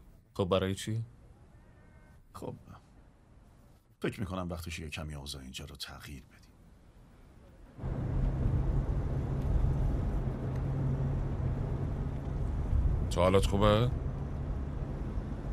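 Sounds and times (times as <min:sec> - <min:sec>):
speech: 0:00.4 - 0:01.2, 0:02.4 - 0:02.8, 0:04.0 - 0:06.5, 0:13.2 - 0:14.0
road noise inside a moving car: 0:06.6 - 0:15.5
car engine hum: 0:07.7 - 0:15.5.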